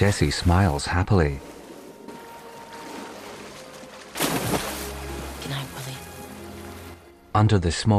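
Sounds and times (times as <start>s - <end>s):
speech: 0.0s - 1.5s, 7.4s - 7.9s
low steady watery background: 0.0s - 7.9s
whale fin smacking the water: 1.5s - 6.9s.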